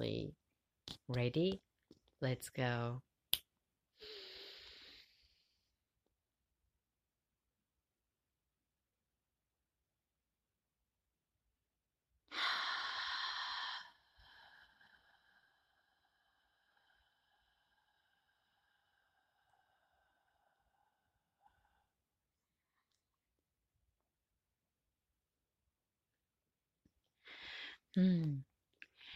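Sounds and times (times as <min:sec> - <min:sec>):
speech: 0:01.1 - 0:03.1, 0:27.9 - 0:28.5
person breathing in through nose and out through mouth: 0:04.0 - 0:05.7, 0:12.3 - 0:22.0, 0:27.2 - 0:28.0.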